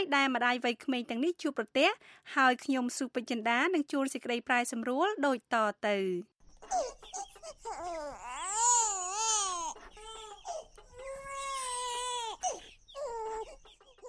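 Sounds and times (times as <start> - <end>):
speech: 0.0 - 8.8
two-month-old baby crying in a restaurant in Yaoundé Cameroon: 6.7 - 14.0.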